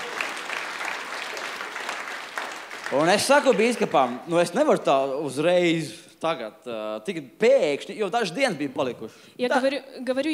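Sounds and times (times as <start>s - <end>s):
church congregation applauding during a worship service: 0.0s - 4.5s
speech: 2.9s - 10.3s.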